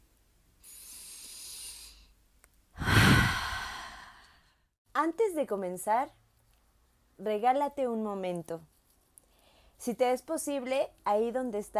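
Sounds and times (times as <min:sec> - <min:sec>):
deep breath: 0:00.6 - 0:02.2, 0:02.8 - 0:04.7
speech: 0:05.0 - 0:06.2, 0:07.2 - 0:08.7, 0:09.8 - 0:11.7.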